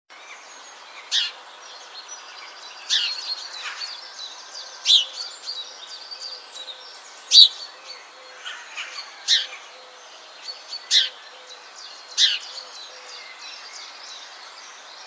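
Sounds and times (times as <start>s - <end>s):
house sparrow Passer domesticus chirping: 1.0s - 14.0s.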